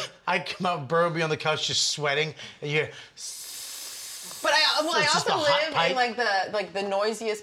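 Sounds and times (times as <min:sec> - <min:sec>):
speech: 0:00.3 - 0:03.4, 0:04.4 - 0:07.4
voice mimicking a hissing radiator in New York: 0:03.2 - 0:05.3.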